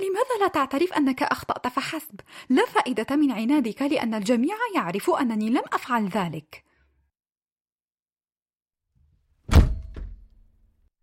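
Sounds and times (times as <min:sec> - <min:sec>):
speech: 0:00.2 - 0:06.7
door slamming shut hard: 0:09.4 - 0:10.5
door rattling knock as it settles: 0:09.5 - 0:10.4.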